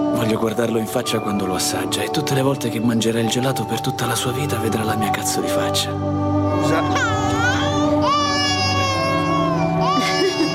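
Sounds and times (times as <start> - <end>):
speech: 0.2 - 7.4
child crying loudly in long drawn-out sobs: 6.5 - 10.5.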